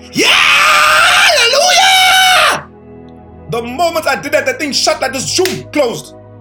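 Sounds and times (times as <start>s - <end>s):
man screaming loudly: 0.0s - 2.7s
speech: 3.6s - 6.2s.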